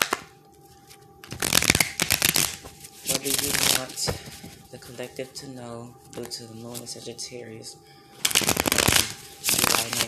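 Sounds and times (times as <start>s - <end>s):
oracle cards being shuffled: 0.0s - 5.0s, 6.1s - 7.0s, 8.2s - 10.0s
speech: 3.2s - 9.0s.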